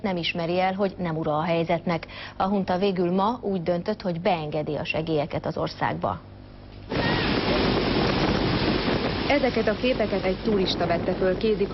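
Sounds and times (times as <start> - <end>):
speech: 0.0 - 6.3, 9.3 - 11.7
strong storm wind tearing at metal roof sheets in Yangon: 6.9 - 11.7.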